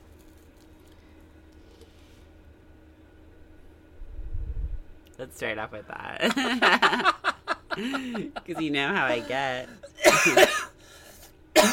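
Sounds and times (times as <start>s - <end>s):
speech: 5.2s - 7.2s, 7.8s - 10.7s
laughter: 6.2s - 10.4s
person coughing while smoking: 9.1s - 10.8s, 11.5s - 11.7s.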